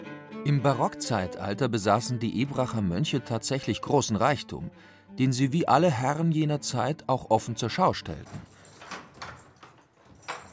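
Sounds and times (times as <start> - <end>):
speech: 0.4 - 8.6
heavy door of an old castle opening: 8.2 - 10.5.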